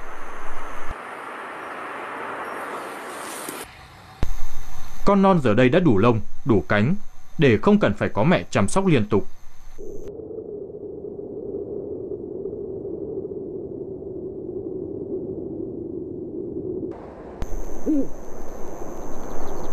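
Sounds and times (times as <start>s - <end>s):
speech: 5.0s - 9.9s
mated pair of Eurasian eagle-owls hooting: 17.4s - 19.7s.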